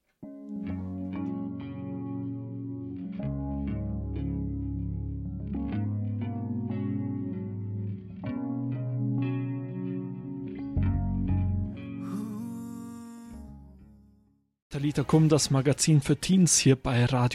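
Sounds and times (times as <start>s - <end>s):
song with deep bass, effects-laden guitar chords and regular beat: 0.6s - 12.5s
speech: 14.8s - 17.3s.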